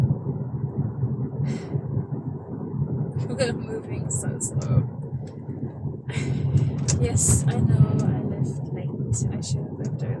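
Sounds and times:
traffic rumble of surrounding cars: 0.0 - 10.1
speech: 3.4 - 5.0, 7.0 - 10.1.

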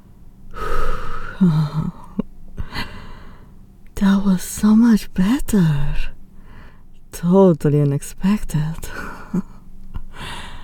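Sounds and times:
heavy breathing as someone catches their breath: 0.5 - 3.6, 10.1 - 10.6
speech: 1.4 - 2.0, 4.0 - 6.2, 7.1 - 9.6.

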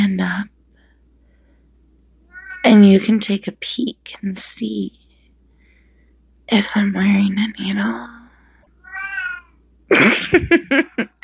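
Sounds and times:
speech: 0.2 - 0.5, 2.6 - 5.0, 6.5 - 8.2, 9.9 - 11.2
cat meowing: 2.3 - 2.7, 8.8 - 9.6
laughter: 9.9 - 11.2.

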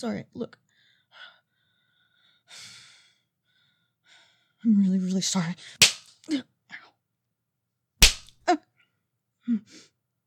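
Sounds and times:
speech: 0.0 - 0.6, 4.6 - 6.5, 8.5 - 8.7, 9.5 - 9.9
open-hand slap to a face: 5.8 - 6.1, 8.0 - 8.3.

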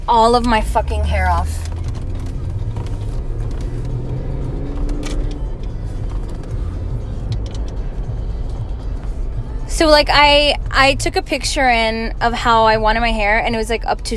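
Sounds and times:
car engine humming while driving: 0.0 - 14.1
road noise heard from inside the cabin: 0.0 - 14.1
speech: 0.1 - 1.8, 9.8 - 14.1.

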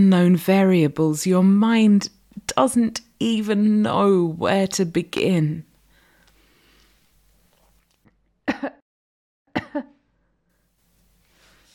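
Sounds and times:
speech: 0.0 - 5.7, 9.7 - 9.9
faint hiss: 0.0 - 8.1, 9.8 - 11.7
soft deliberate fake cough: 8.5 - 8.8, 9.5 - 9.9.

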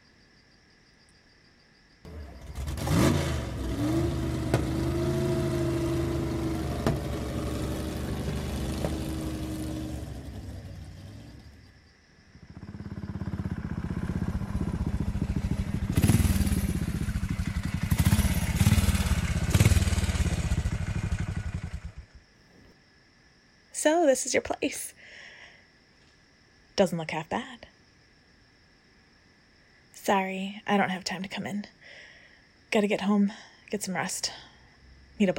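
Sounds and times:
motorcycle engine starting, idling and revving as the bike rides off: 2.1 - 11.8, 12.4 - 22.2
speech: 24.0 - 25.0, 26.8 - 27.7, 30.1 - 32.0, 32.7 - 34.5, 35.2 - 35.3.

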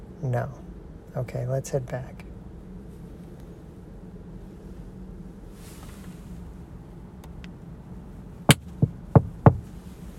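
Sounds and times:
faint room hum: 0.0 - 10.1
speech: 0.2 - 2.3
sharp knocks on a door: 8.5 - 9.7.

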